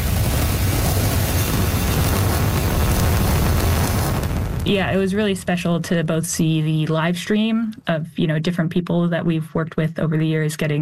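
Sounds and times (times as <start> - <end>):
Falcon Heavy rocket launch roar: 0.0 - 6.2
speech: 4.7 - 10.7.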